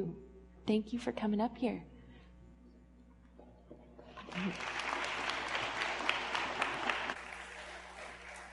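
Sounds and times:
speech: 0.0 - 1.9, 4.3 - 4.8
audience applause: 4.2 - 8.5.

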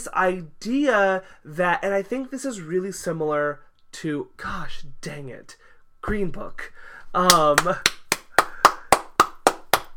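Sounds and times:
speech: 0.0 - 8.0
person clapping: 7.2 - 9.9.

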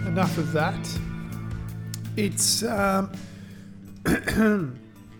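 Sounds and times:
speech: 0.2 - 1.1, 2.2 - 3.3, 4.1 - 4.9
person clearing throat: 4.1 - 4.8.

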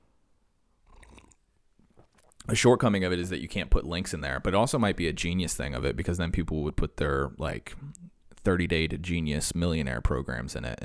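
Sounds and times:
slurping sip of hot coffee: 0.8 - 2.5
speech: 2.4 - 10.8.

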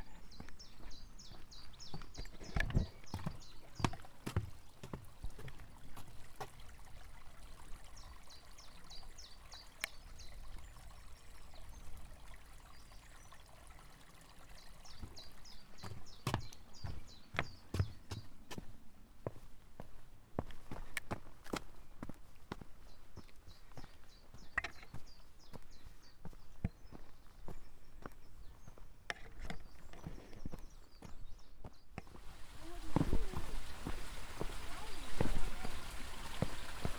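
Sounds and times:
footsteps on a wooden footbridge over a stream: 0.0 - 6.6, 15.0 - 36.9
trickle of running water in a stream: 0.4 - 18.3, 32.1 - 36.9.

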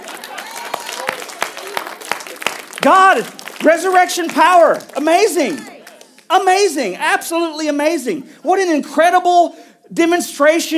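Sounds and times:
audience applauding steadily with dense clapping: 0.0 - 6.7
speech: 2.8 - 5.7, 6.3 - 10.7.

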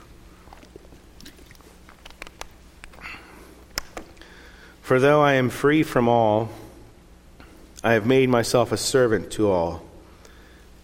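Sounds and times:
person sipping water: 0.0 - 4.4
swallowing: 0.3 - 4.3
mouth clicks: 0.4 - 4.4
soft breath: 3.0 - 4.8, 10.0 - 10.8
speech: 4.9 - 6.6, 7.8 - 9.9.

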